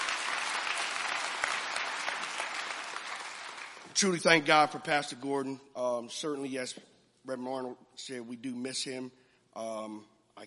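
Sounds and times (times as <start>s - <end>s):
church audience applauding speakers: 0.0s - 4.4s
speech: 4.0s - 10.4s.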